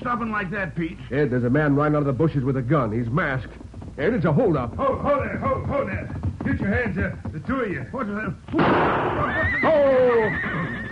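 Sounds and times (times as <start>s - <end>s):
speech: 0.0s - 10.8s
steady noise: 0.0s - 10.8s
horse pulling a carriage neighing with a shrill whinny: 8.9s - 10.8s.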